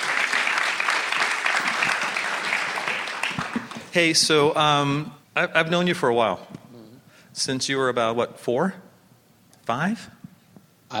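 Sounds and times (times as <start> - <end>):
audience applause: 0.0 - 4.0
speech: 4.0 - 6.6, 7.4 - 8.9, 9.7 - 10.2.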